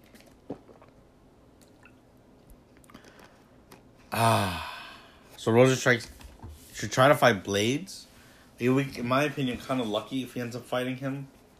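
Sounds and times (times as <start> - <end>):
person sipping and swallowing water: 0.0 - 4.7
speech: 4.1 - 4.7, 5.4 - 6.2, 6.8 - 11.4
loud satisfied voiced exhale: 4.1 - 5.4.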